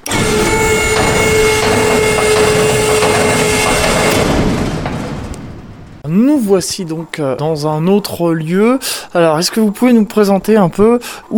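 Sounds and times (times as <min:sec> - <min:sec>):
motorized telescope enclosure closing with whir and rattling grind: 0:00.0 - 0:06.0
speech: 0:06.1 - 0:11.3.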